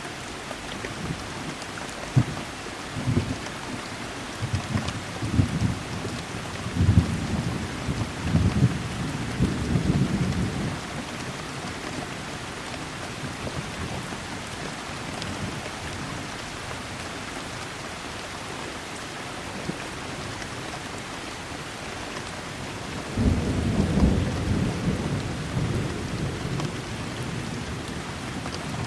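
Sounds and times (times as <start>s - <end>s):
heavy rain: 0.0s - 28.8s
low rolling thunder: 6.7s - 10.8s, 23.0s - 28.0s.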